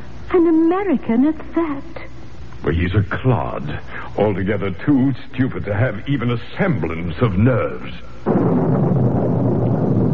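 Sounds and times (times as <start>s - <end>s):
speech: 0.3s - 2.0s, 2.6s - 9.1s
thunder rumbling: 8.2s - 10.1s.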